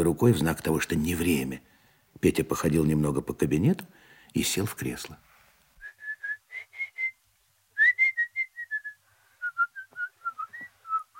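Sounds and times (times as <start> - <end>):
speech: 0.0 - 5.3
person whistling a tune: 5.8 - 7.2, 7.8 - 11.1.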